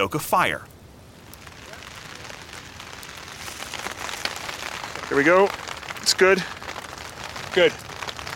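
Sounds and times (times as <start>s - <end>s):
speech: 0.0s - 0.7s, 5.1s - 6.6s, 7.6s - 7.8s
rain pattering on outdoor surfaces at a campsite: 0.0s - 8.3s.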